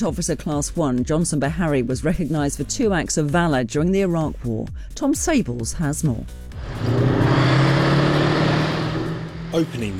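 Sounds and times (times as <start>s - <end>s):
speech: 0.0s - 7.6s, 9.5s - 9.9s
Warrior armoured vehicle heavy engine rumble driving laps around an arena in Dorset: 6.6s - 9.9s.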